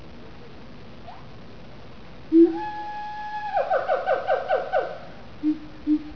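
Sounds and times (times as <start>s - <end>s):
siamang song of hooted and barking notes: 2.4s - 6.1s.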